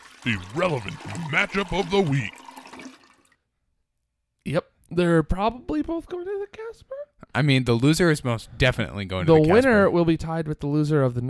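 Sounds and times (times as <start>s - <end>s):
toilet flushing: 0.0s - 3.4s
speech: 0.2s - 2.4s, 4.4s - 11.2s.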